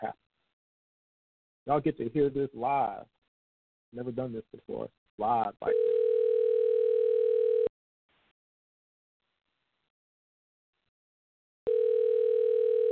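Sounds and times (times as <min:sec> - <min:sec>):
speech: 0:01.7 - 0:03.2, 0:03.9 - 0:05.9
telephone line tone as a call is placed: 0:05.7 - 0:07.7, 0:11.7 - 0:12.9.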